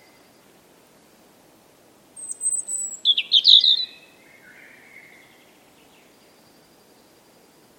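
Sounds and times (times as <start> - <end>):
European robin singing: 2.2 - 7.7.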